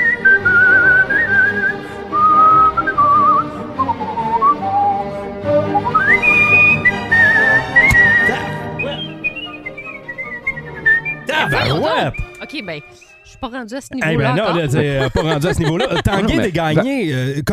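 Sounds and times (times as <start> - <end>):
professional melodic whistling: 0.0 - 13.7
instrumental accompaniment: 0.0 - 16.6
laughter: 7.0 - 9.2, 11.3 - 12.2, 14.0 - 17.5
speech: 12.5 - 17.5.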